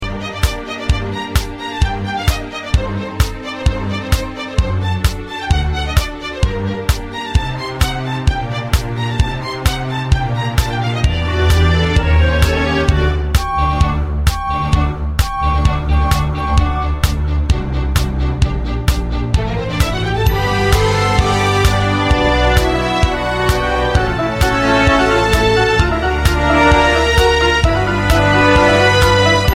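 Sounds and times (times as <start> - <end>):
orchestra playing without lead part: 0.0 - 29.5.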